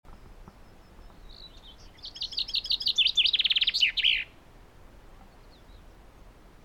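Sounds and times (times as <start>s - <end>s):
common chaffinch Fringilla coelebs singing: 0.1s - 4.4s, 5.2s - 6.0s.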